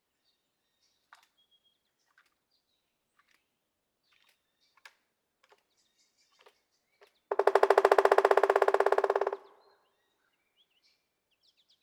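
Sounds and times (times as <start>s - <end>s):
Pileated woodpecker rapid series of sharp knocks: 7.3s - 9.5s.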